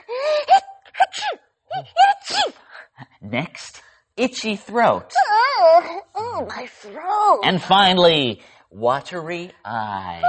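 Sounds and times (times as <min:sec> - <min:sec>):
person performing theatrical sneezes: 0:00.4 - 0:02.7
speech: 0:03.2 - 0:05.2, 0:06.4 - 0:10.2.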